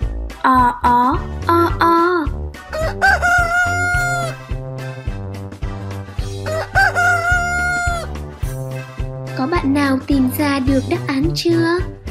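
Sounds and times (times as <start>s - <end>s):
bouncy music with a thumping beat: 0.0s - 12.0s
speech: 0.4s - 2.1s, 9.6s - 12.0s
rooster crowing: 2.7s - 4.4s, 6.4s - 8.2s.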